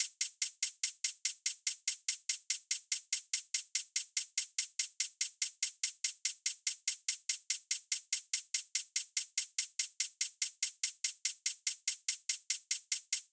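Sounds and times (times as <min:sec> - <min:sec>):
future bass hi-hat drum loop: 0:00.0 - 0:13.3.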